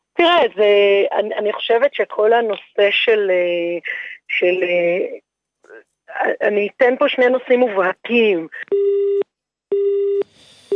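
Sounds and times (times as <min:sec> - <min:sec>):
speech: 0:00.2 - 0:09.1
phone busy signal after a disconnected call: 0:08.7 - 0:10.7.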